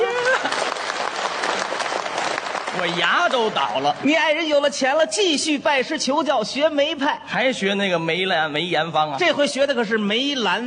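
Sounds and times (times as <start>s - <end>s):
audience at a stage show applauding a singer: 0.0s - 4.5s
speech: 2.8s - 10.6s.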